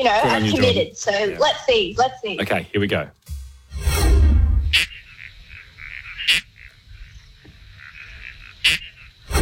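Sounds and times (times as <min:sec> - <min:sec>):
speech: 0:00.0 - 0:03.3
toadlet frog call, Northern Territory species: 0:04.7 - 0:09.3.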